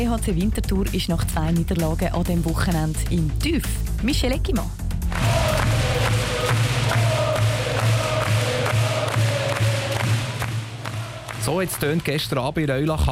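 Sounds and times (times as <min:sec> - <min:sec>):
speech: 0:00.0 - 0:04.8, 0:11.4 - 0:13.1
steady rhythmic thumps like drumming or clapping: 0:05.0 - 0:12.2
handball crowd cheering in packed sports hall: 0:05.1 - 0:12.3.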